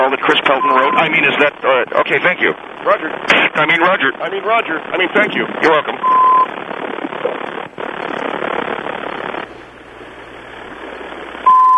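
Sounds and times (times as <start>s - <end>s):
hissy telephone-line noise: 0.0s - 4.1s, 4.9s - 11.7s
speech: 0.1s - 7.6s
phone-call recording warning beep: 0.4s - 1.4s, 6.0s - 6.5s, 11.4s - 11.7s.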